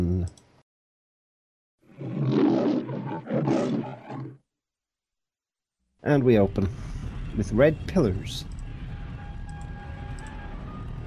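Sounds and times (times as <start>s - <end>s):
speech: 0.2s - 0.4s, 6.0s - 8.5s
lion roaring in a studio logo: 1.9s - 4.4s.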